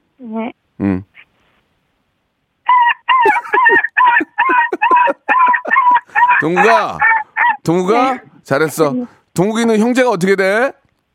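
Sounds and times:
speech: 0:00.2 - 0:01.1, 0:06.4 - 0:07.0, 0:07.6 - 0:10.8
voice imitating a puppy crying sadly: 0:02.7 - 0:08.3
laughter: 0:03.1 - 0:07.2.

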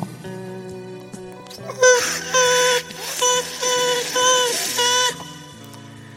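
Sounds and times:
voice making high whiny buzzing nonsense sounds imitating fruit fly language: 0:01.6 - 0:05.9.

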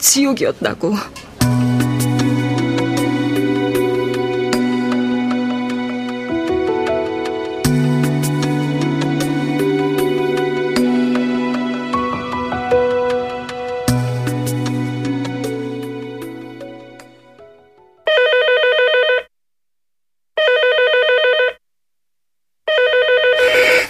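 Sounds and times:
speech: 0:00.0 - 0:01.6
sustained decaying musical chord: 0:01.4 - 0:18.0
telephone ringing: 0:18.0 - 0:19.3, 0:20.4 - 0:21.6, 0:22.7 - 0:23.5.

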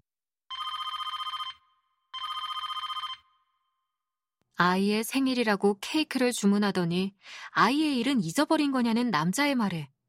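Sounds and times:
telephone ringing with trilling bell tone: 0:00.5 - 0:03.7
speech: 0:04.6 - 0:09.9.

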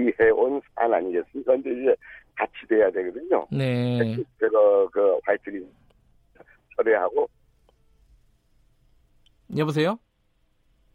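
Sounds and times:
speech: 0:00.0 - 0:05.8, 0:06.8 - 0:07.4, 0:09.5 - 0:10.0
faint low hiss of a dropped phone line: 0:00.0 - 0:10.9.

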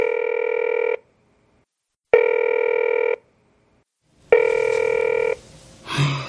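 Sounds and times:
unanswered phone call ringing tone: 0:00.0 - 0:01.0, 0:02.1 - 0:03.2, 0:04.3 - 0:05.4.

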